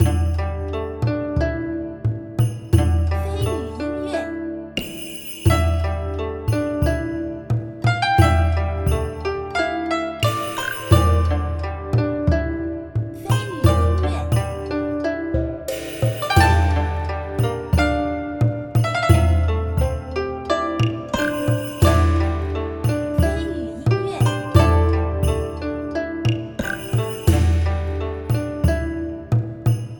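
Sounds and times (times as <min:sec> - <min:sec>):
Chinese style music: 0:00.0 - 0:29.9.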